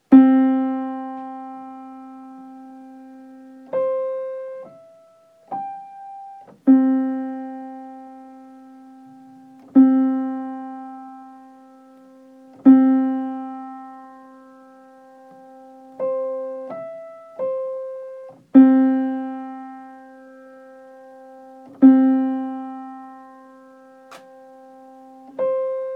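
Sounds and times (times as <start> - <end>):
piano melody: 0.0 - 25.9.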